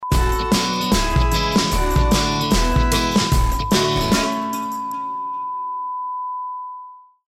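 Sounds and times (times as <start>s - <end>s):
jingle: 0.1s - 5.5s.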